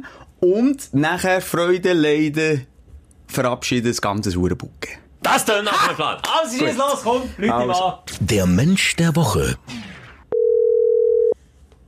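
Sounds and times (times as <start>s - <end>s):
speech: 0.0s - 2.7s, 3.3s - 9.8s
telephone ringing tone while calling someone: 10.3s - 11.4s.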